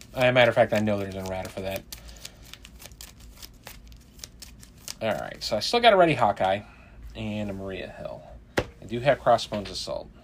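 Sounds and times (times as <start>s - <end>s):
deck of playing cards being shuffled: 0.0s - 5.5s
speech: 0.2s - 2.2s, 5.0s - 10.2s.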